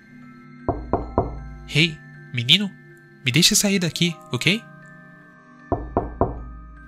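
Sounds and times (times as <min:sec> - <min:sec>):
knocking on a door: 0:00.7 - 0:01.5, 0:05.7 - 0:06.6
speech: 0:01.7 - 0:04.7.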